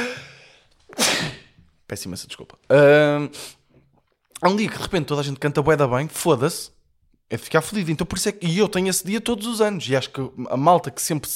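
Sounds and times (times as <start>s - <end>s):
person sneezing: 0.0s - 1.6s
speech: 1.9s - 3.6s, 4.4s - 11.3s.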